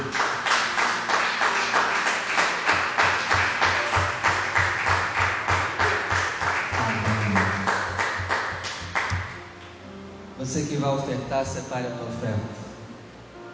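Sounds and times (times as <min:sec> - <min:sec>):
audience at a church service clapping in rhythm: 0:00.0 - 0:09.4
speech: 0:10.8 - 0:12.6.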